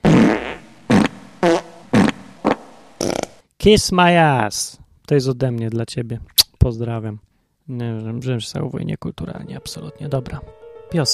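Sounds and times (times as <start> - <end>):
loud fart sounds: 0.0 - 3.4
speech: 3.6 - 11.1.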